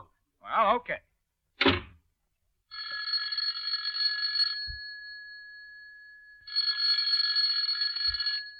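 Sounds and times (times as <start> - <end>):
speech: 0.4 - 1.8
electric doorbell ringing: 2.7 - 8.5.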